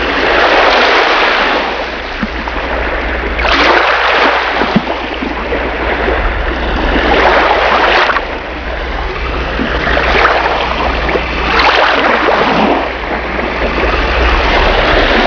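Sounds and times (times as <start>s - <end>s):
sea waves: 0.0s - 15.2s.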